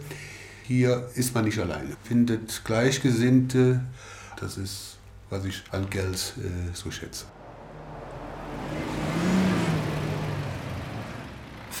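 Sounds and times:
speech: 0.7s - 7.4s
cars and trucks passing on busy road: 7.2s - 11.7s.

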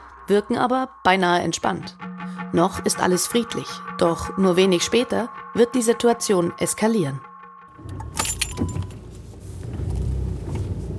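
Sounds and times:
speech: 0.3s - 8.8s
police commander's car engine and road rumble heading toward a border crossing: 7.8s - 10.9s
bright metallic jangles: 8.0s - 9.0s.

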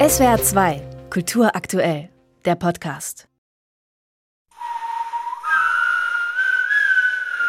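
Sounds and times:
speech: 0.1s - 3.3s
faint windblown human whistling in a forest: 4.5s - 7.4s.

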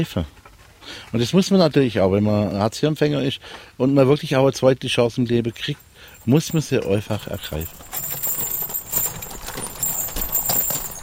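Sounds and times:
speech: 0.0s - 7.8s
horse hooves clip-clopping: 5.3s - 11.0s.

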